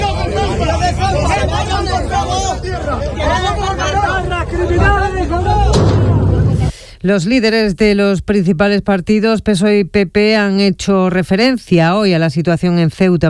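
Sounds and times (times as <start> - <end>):
crowd shouting during a street clash with local residents: 0.0 - 6.7
gunshot fired into the air by police: 5.7 - 6.7
speech: 7.0 - 13.2.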